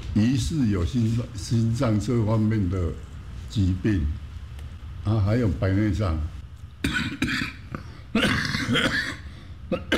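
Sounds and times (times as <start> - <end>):
speech: 0.2 - 4.2, 5.0 - 7.5, 8.2 - 9.0
65-year-old man coughing harshly and wheezily: 6.8 - 9.9.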